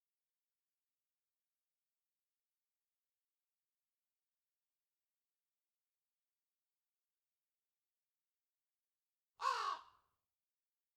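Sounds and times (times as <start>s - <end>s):
crow cawing: 9.4s - 10.0s.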